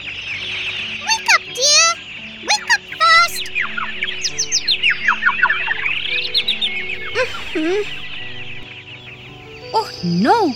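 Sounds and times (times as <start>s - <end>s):
birds chirping: 0.0s - 10.5s
low warbling bird call: 2.5s - 9.3s
speech: 7.6s - 8.0s, 10.0s - 10.5s.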